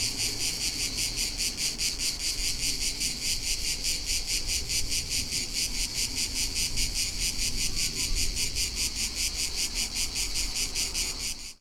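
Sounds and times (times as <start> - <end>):
cicada chorus with high-pitched rasping pulsing buzz: 0.0 - 11.5.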